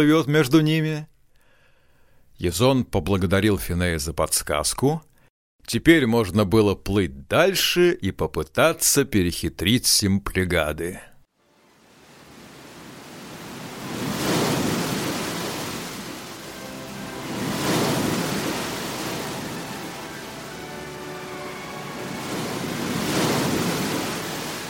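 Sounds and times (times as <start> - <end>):
speech: 0.0 - 1.1, 2.4 - 11.1
big waves crashing: 11.7 - 24.6
rough stormy sea water roaring around clashing rocks: 11.7 - 24.6.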